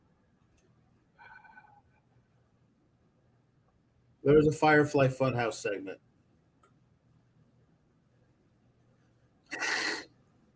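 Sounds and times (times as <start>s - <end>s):
speech: 4.2s - 6.1s
person blowing nose forcefully: 9.5s - 10.1s.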